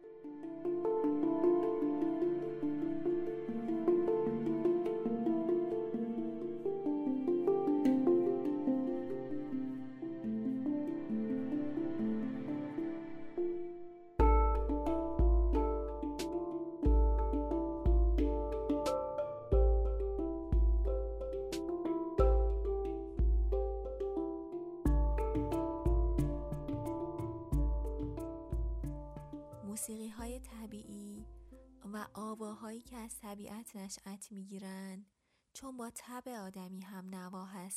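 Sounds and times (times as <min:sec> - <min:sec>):
gentle piano meditation music: 0:00.0 - 0:29.8
speech: 0:33.3 - 0:37.7.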